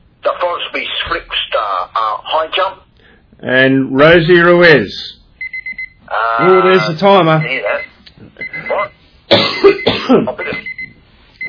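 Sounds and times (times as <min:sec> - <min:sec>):
speech: 0:00.7 - 0:01.2, 0:01.8 - 0:02.8, 0:03.4 - 0:05.2, 0:06.4 - 0:07.8, 0:10.1 - 0:10.7
coughing and throat clearing: 0:09.3 - 0:10.7.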